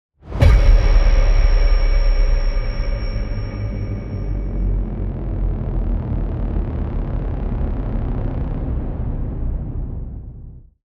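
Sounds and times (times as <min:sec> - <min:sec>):
boom signal: 0:00.4 - 0:10.5.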